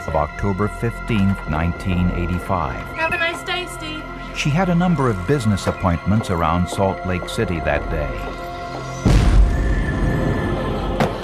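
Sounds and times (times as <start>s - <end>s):
speech: 0.1s - 3.2s, 4.4s - 8.4s
loud explosion: 9.0s - 11.1s.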